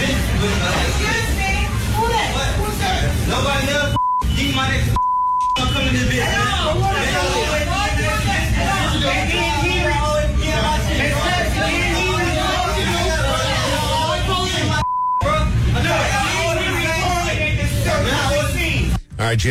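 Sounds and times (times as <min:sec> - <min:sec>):
crowd chatter in a busy fast food restaurant: 0:00.0 - 0:03.9, 0:05.7 - 0:19.0
short electronic beeps in a fast food restaurant: 0:03.9 - 0:05.7.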